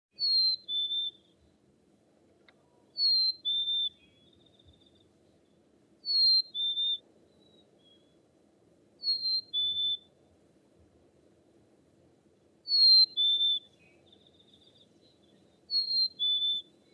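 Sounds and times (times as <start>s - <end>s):
chirp: 0.2s - 1.5s, 2.7s - 8.2s, 9.0s - 10.0s, 12.7s - 16.9s.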